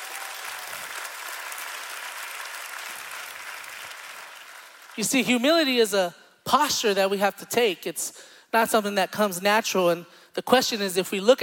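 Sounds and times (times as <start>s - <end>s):
audience applauding during a sermon: 0.0s - 5.0s
speech: 5.0s - 11.4s.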